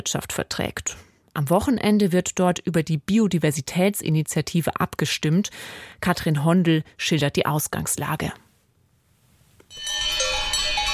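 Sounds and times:
speech: 0.0s - 8.4s
cowbells ringing on cows grazing flowering alpine meadows in Switzerland: 9.7s - 10.9s.

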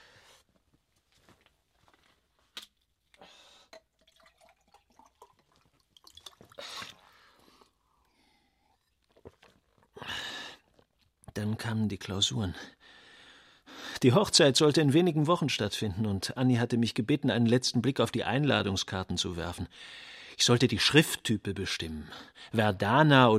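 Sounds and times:
water dripping: 3.1s - 7.7s
water pouring into a glass: 3.7s - 7.7s
speech: 11.4s - 12.8s, 14.0s - 23.3s.

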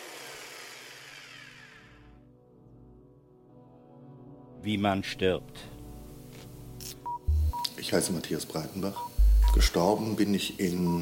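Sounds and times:
chainsaw roaring and winding down after being switched off: 0.0s - 2.2s
speech: 4.6s - 5.7s, 7.8s - 10.9s.

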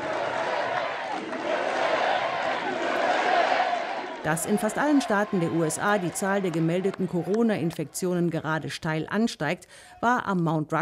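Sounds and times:
large rally crowd chanting: 0.0s - 8.0s
speech: 4.2s - 10.7s.

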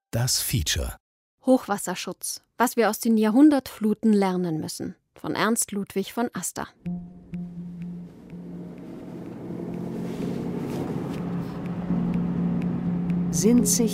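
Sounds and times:
speech: 0.1s - 7.0s, 13.4s - 13.9s
car engine pulling away from road maintenance depot yard in Sinzig: 6.9s - 13.9s.

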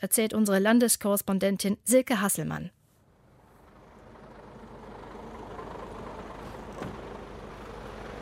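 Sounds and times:
speech: 0.0s - 2.8s
trucks and road traffic rumbling outside a slaughterhouse: 3.0s - 8.1s.

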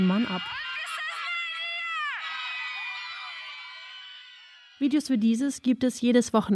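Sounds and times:
speech: 0.0s - 0.6s, 4.8s - 6.5s
woman wailing desperately at a protest: 0.0s - 4.7s
woman screaming at a protest in Belarus: 0.0s - 4.8s
crowd commotion at a protest: 0.0s - 5.0s.

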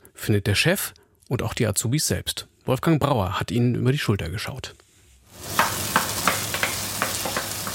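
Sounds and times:
speech: 0.2s - 4.8s
chicken meat sizzling in a pan: 5.3s - 7.7s.

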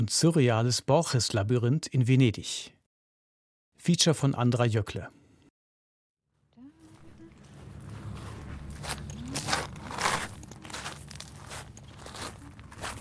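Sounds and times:
speech: 0.0s - 2.8s, 3.8s - 5.2s
low constant hum of the surroundings: 6.3s - 12.9s
footsteps on gravel in a cypress-lined garden labyrinth: 6.8s - 12.9s.

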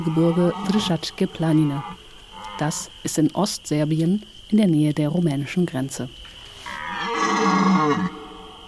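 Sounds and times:
speech: 0.0s - 2.0s, 2.6s - 6.3s
rutting stag bellowing roar: 6.7s - 8.4s.

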